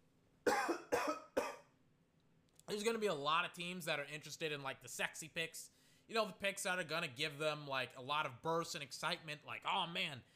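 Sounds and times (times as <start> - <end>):
sharp harsh coughs: 0.5 - 1.7
speech: 2.7 - 10.3.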